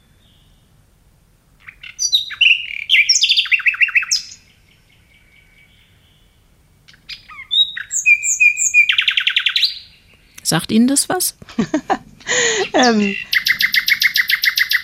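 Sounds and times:
nightingale singing: 1.6 - 10.6, 12.4 - 14.8
speech: 10.5 - 13.3
laughter: 11.5 - 13.2.

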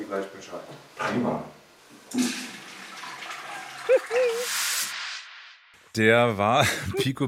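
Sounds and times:
speech: 0.1 - 2.6, 6.0 - 7.2
water stream splashing into a cup imitating urinating: 2.2 - 4.4
laughter: 3.8 - 4.5, 6.6 - 7.2.

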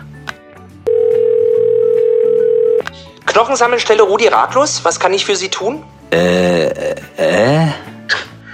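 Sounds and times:
music: 0.0 - 8.5
telephone dial tone after a misdialed call: 0.9 - 2.8
speech: 3.4 - 7.8.

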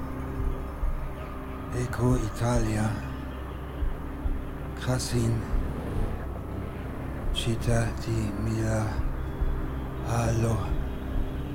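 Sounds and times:
airplane engine droning in the sky: 0.0 - 11.5
speech: 1.7 - 3.1, 4.8 - 5.6, 7.4 - 9.0, 10.1 - 10.8.

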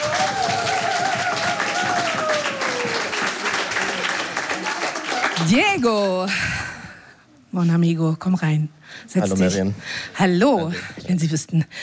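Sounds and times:
audience applause: 0.0 - 6.0
speech: 5.4 - 6.6, 7.5 - 11.8.

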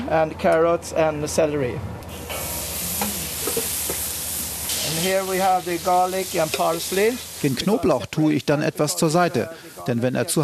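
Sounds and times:
speech: 0.1 - 2.3, 5.0 - 10.4
vegetables frying in hot oil in a wok: 2.1 - 9.5.

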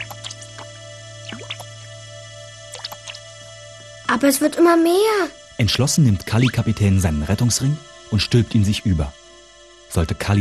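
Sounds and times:
water being scooped out of a boat: 0.0 - 1.7, 2.7 - 3.2
steady low hum: 0.0 - 10.2
speech: 4.1 - 9.2, 9.9 - 10.3.

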